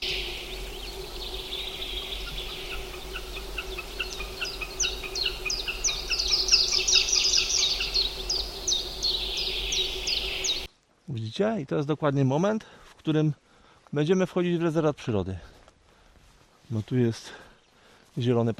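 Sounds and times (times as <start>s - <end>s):
faint constant hum: 0.0s - 10.7s
green sandpiper sharp high clipped whistles: 0.0s - 10.7s
hiss: 0.0s - 18.5s
speech: 11.4s - 15.5s, 16.7s - 17.4s, 18.2s - 18.5s.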